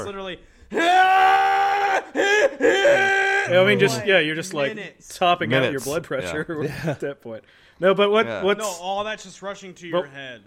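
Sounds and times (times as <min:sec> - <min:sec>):
speech: 0:00.0 - 0:01.3, 0:02.0 - 0:10.4
person imitating an anime power-up scream: 0:00.7 - 0:04.0.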